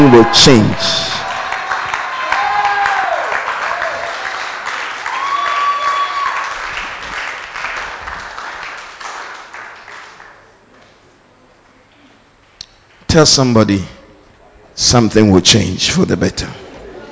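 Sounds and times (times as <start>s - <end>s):
large crowd clapping: 0.0s - 10.6s
speech: 0.1s - 1.0s, 13.2s - 14.0s, 14.8s - 16.6s.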